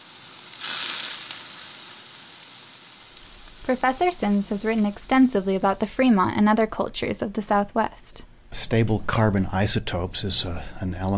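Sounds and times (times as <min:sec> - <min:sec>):
animal fat sizzling on hot rock: 0:00.0 - 0:06.9
speech: 0:03.7 - 0:11.1.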